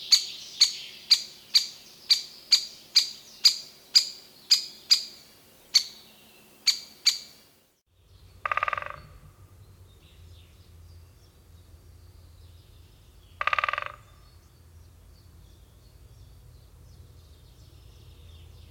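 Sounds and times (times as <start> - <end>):
great spotted woodpecker giving sharp high kik calls: 0.0 - 7.5, 8.4 - 9.2, 13.4 - 14.3.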